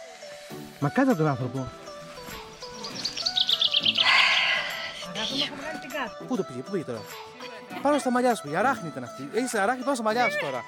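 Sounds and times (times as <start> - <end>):
faint outdoor background: 0.0 - 10.6
speech: 0.8 - 1.8, 5.2 - 10.6
birds chirping: 2.0 - 6.2.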